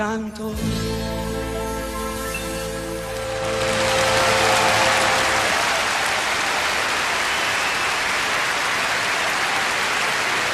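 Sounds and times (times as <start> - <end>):
speech: 0.0 - 1.1
sustained musical chord: 1.3 - 5.5
weak applause from a concert audience: 3.0 - 10.5.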